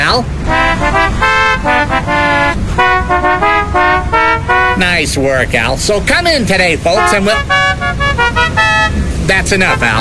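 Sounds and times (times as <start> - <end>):
speech: 0.1 - 0.9, 4.8 - 7.6, 9.3 - 9.9
programmed novelty car horn playing a musical phrase at a car dealership: 0.4 - 5.1, 6.9 - 9.9.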